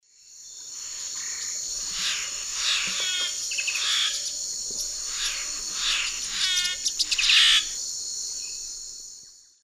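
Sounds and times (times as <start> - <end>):
Gymnomystax mexicanus song: 0.4 - 7.7.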